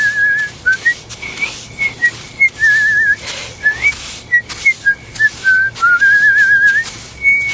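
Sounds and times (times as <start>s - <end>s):
person whistling a tune: 0.0s - 7.5s
soft hiss: 0.0s - 7.5s.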